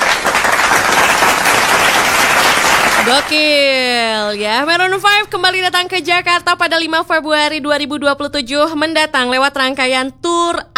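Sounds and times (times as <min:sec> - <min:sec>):
crowd applauding: 0:00.0 - 0:03.8
speech: 0:03.1 - 0:10.7.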